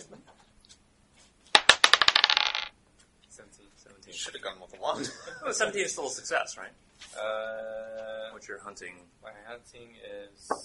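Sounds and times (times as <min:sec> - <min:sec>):
dice tumbling across a hard table: 0:01.5 - 0:02.7
speech: 0:04.1 - 0:10.6.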